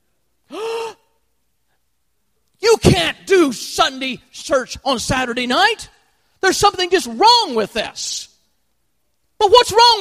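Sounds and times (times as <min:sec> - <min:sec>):
shocked gasp: 0:00.5 - 0:01.2
speech: 0:02.9 - 0:08.3, 0:09.4 - 0:09.9.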